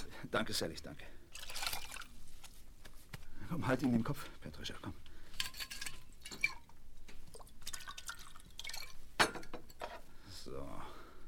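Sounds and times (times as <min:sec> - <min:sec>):
speech: 0:00.3 - 0:01.2, 0:03.5 - 0:05.1
alcohol pouring into a glass: 0:01.3 - 0:02.2, 0:05.7 - 0:09.1.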